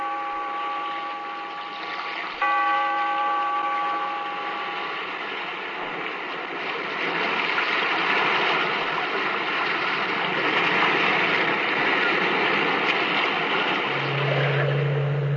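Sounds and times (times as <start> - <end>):
low sustained hum: 0.0 - 6.6, 13.7 - 15.3
sea waves churning and washing against rock in an echoing cave: 0.0 - 15.3.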